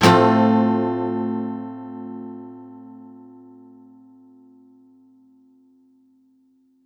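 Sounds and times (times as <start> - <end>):
guitar one-shots in F major at 128 BPM: 0.0 - 3.6.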